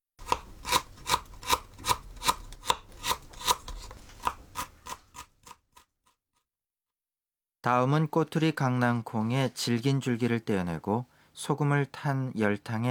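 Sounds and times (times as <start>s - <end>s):
knife finely chopping peeled ginger on a board: 0.2s - 5.6s
speech: 7.6s - 12.8s.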